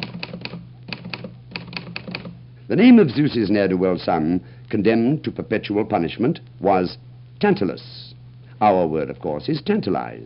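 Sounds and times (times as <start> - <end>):
typing on an Underwood typewriter: 0.0 - 2.4
speech: 2.7 - 8.0, 8.6 - 10.2.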